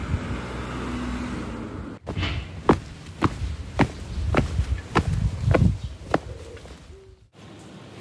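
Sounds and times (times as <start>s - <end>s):
low passing-traffic rumble: 0.0s - 6.3s
footsteps walking along a paved street in Nonoichi Ishikawa Japan: 2.0s - 6.9s.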